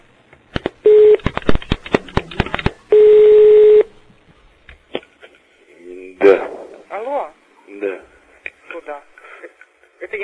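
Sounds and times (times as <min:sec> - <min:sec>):
long steady telephone tones: 0:00.9 - 0:01.2, 0:02.9 - 0:04.0.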